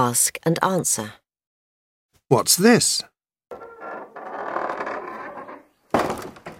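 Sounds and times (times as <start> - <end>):
speech: 0.0 - 1.2, 2.3 - 3.1
door creaking with a long groan: 3.5 - 6.5.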